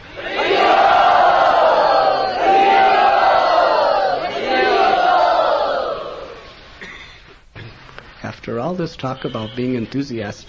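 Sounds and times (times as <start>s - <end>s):
crowd at a religious gathering shouting and cheering to welcome a speaker: 0.0s - 6.7s
speech: 8.5s - 10.4s.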